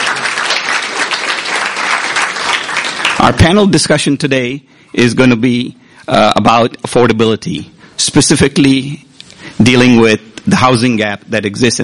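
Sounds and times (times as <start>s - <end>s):
room full of people applauding: 0.0s - 3.5s
speech: 3.2s - 11.8s.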